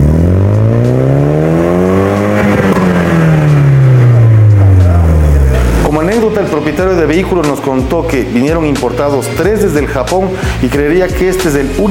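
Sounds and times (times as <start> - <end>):
1995 Nissan Silvia 200SX engine revving through its exhaust: 0.0 - 8.4
speech: 6.6 - 11.8.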